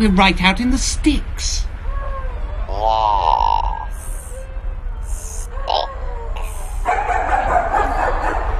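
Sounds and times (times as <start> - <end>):
speech: 0.0 - 1.7
steady low engine-like rumble: 0.0 - 8.5
dog whining: 1.9 - 8.5
dogs barking and yelping: 5.0 - 8.5.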